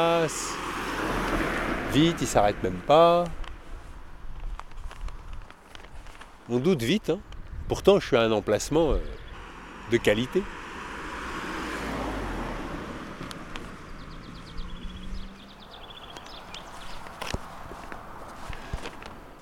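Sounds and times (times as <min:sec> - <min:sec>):
speech: 0:00.0 - 0:01.1, 0:01.9 - 0:03.4, 0:06.5 - 0:09.2, 0:09.9 - 0:10.6
low traffic rumble outdoors at a toll plaza: 0:00.0 - 0:19.4
footsteps outdoors at a toll plaza: 0:03.4 - 0:06.5, 0:16.1 - 0:19.4
high bird chirps at a toll plaza: 0:08.4 - 0:19.3.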